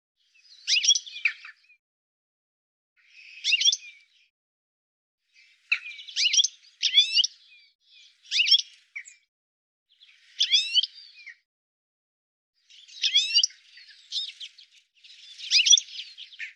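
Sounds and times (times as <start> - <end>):
bird calls in short chirpy bursts of sharp rapid notes: 0.2 - 1.8, 3.0 - 4.3, 5.4 - 9.2, 9.9 - 11.4, 12.6 - 16.5.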